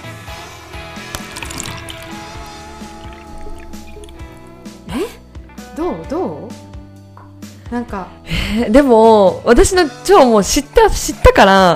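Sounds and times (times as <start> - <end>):
cold water being poured in a steady stream: 1.0 - 4.9
speech: 5.8 - 6.6, 7.7 - 11.7.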